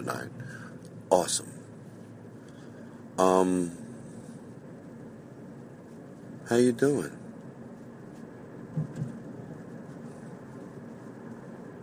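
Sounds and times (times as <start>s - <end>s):
speech: 0.0s - 1.6s, 3.2s - 3.8s, 6.5s - 7.2s
road noise from inside a moving car: 0.0s - 11.8s
soft thumps: 8.7s - 9.3s.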